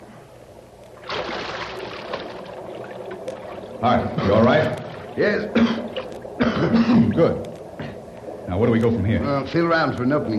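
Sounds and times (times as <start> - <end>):
person dropping about 12 feet into sewer water: 1.0 - 3.6
sewer water churning and sloshing: 1.0 - 6.6
speech: 3.8 - 5.9, 6.6 - 7.5, 8.5 - 10.3.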